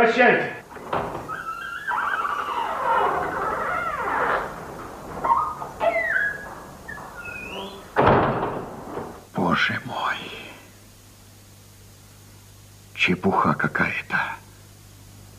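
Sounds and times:
speech: 0.0 - 1.3, 13.0 - 14.4
back door hinges creaking open: 0.6 - 9.3.

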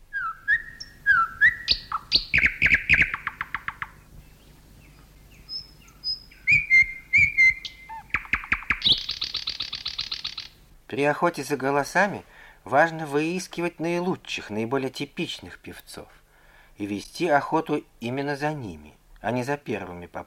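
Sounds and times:
nightingale singing: 0.0 - 10.7
speech: 11.0 - 16.2, 16.8 - 20.2.

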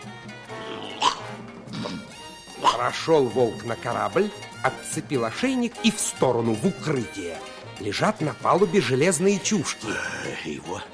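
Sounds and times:
big dog of unknown breed yapping while running: 2.6 - 3.0
speech: 2.7 - 10.9.

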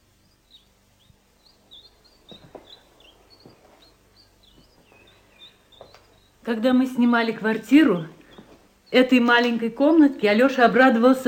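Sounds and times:
faint low noise: 0.0 - 11.2
tits chirping in a cage in a small apartment room: 0.0 - 11.2
soft rustling: 1.1 - 9.9
speech: 6.5 - 8.2, 8.9 - 11.2.

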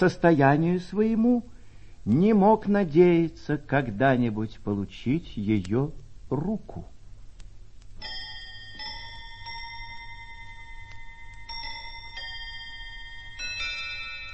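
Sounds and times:
speech: 0.0 - 6.9
low hum: 0.0 - 14.3
table clock striking the hour: 8.0 - 14.3.

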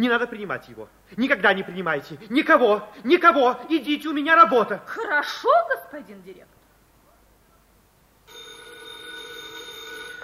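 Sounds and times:
speech: 0.0 - 6.6
telephone bell ringing: 8.3 - 10.2.

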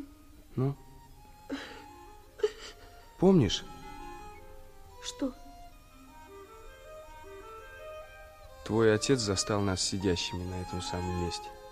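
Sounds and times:
speech: 0.6 - 0.8, 3.2 - 3.7, 5.0 - 5.4, 8.7 - 11.6
woman crying softly: 1.4 - 3.1.

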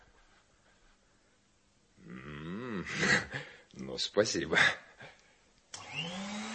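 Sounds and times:
speech: 4.0 - 4.8
vacuum cleaner running: 5.7 - 6.5.

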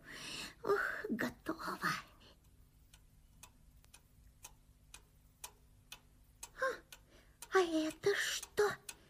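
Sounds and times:
clock ticking: 1.3 - 9.0.

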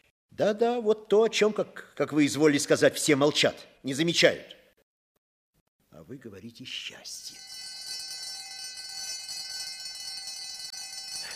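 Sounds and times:
speech: 0.4 - 4.6, 6.0 - 7.5
electric school bell ringing at the end of a long break: 7.4 - 11.3.

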